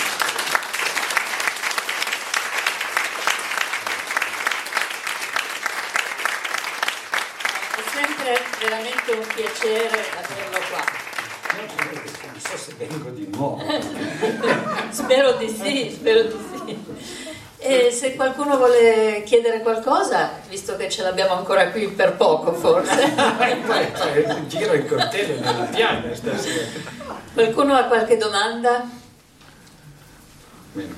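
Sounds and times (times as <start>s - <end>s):
live audience applause: 0.0s - 15.2s
speech: 8.6s - 29.0s
laughter: 13.3s - 17.4s, 22.6s - 27.4s.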